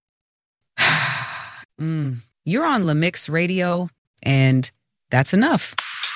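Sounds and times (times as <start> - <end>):
deep breaths drawn in and let out: 0.8 - 1.7
speech: 1.8 - 6.0.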